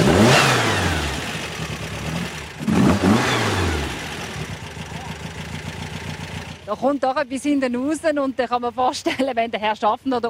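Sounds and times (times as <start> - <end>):
tuned car engine revving through exhaust: 0.0 - 8.0
speech: 6.7 - 10.2.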